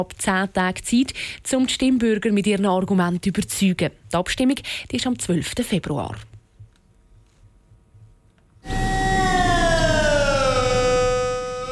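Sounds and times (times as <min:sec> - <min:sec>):
speech: 0:00.0 - 0:06.3
civil defense warning siren sliding downward: 0:08.6 - 0:11.7.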